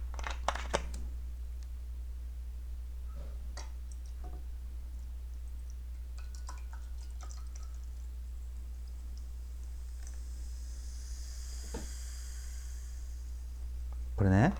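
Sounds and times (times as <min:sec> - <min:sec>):
low constant hum: 0:00.0 - 0:14.5
soda water fizzing and crackling in a glass: 0:06.0 - 0:14.5
speech: 0:14.2 - 0:14.5.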